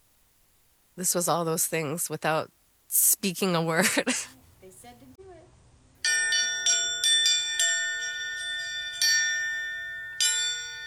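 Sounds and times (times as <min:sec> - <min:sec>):
speech: 0:01.0 - 0:05.1
bell ringing: 0:06.0 - 0:10.8.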